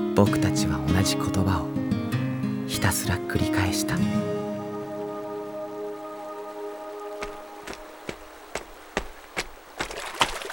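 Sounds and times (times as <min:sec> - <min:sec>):
speech: 0:00.2 - 0:01.9, 0:02.7 - 0:04.4
steady tonal hum: 0:02.7 - 0:08.5
water splashing as someone wades into a river: 0:07.7 - 0:10.5.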